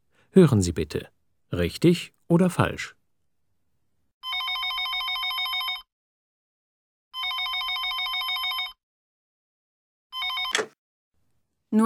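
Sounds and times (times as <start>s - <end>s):
speech: 0.3s - 3.0s
telephone bell ringing for an incoming call: 4.2s - 5.9s, 7.2s - 8.8s, 10.1s - 10.8s
sharp click of a telephone call being picked up: 10.4s - 10.8s.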